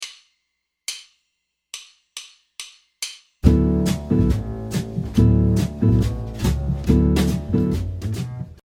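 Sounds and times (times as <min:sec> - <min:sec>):
jazz guitar comping with a Charleston rhythm: 0:03.4 - 0:08.6.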